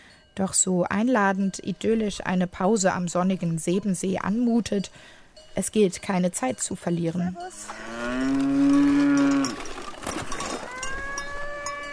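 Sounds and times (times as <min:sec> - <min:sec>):
speech: 0:00.4 - 0:08.9
cow mooing on a mountain hiking trail: 0:07.4 - 0:09.7, 0:10.6 - 0:11.9
quieter rustling: 0:07.7 - 0:11.2.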